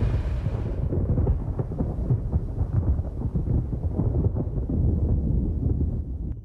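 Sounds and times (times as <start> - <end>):
thunder of a brewing storm over a long open road: 0.0 - 6.3.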